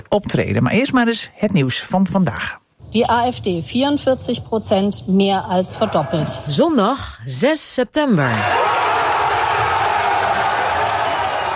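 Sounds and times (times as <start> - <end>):
speech: 0.0 - 8.8
large crowd cheering at election result: 8.3 - 11.5.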